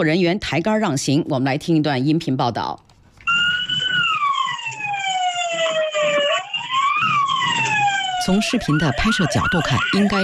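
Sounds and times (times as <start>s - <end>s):
speech: 0.0s - 2.8s, 8.3s - 10.2s
fire truck siren wailing at a highway toll booth: 3.2s - 10.2s.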